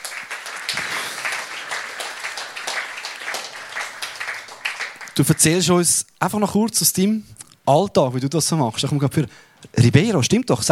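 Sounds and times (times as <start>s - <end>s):
audience applauding to welcome a speaker: 0.0s - 5.7s
speech: 5.2s - 10.7s.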